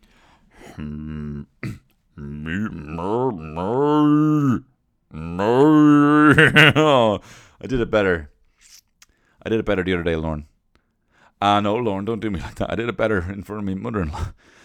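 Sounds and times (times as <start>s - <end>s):
person imitating a cow with drawn-out wavering moos: 0.6s - 6.4s
speech: 0.8s - 1.8s, 6.4s - 8.4s, 9.4s - 10.5s, 11.4s - 14.6s.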